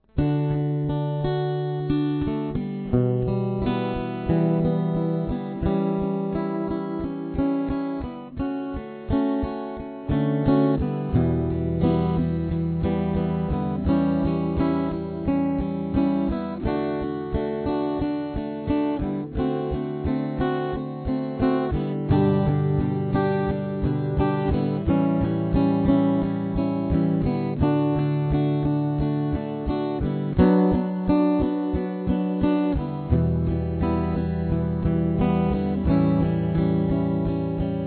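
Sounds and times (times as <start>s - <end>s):
guitar playing a verse: 0.0s - 37.8s.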